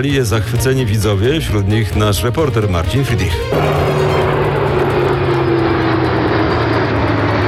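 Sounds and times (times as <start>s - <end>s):
speech: 0.0s - 4.2s
military aircraft flying overhead: 3.3s - 7.4s.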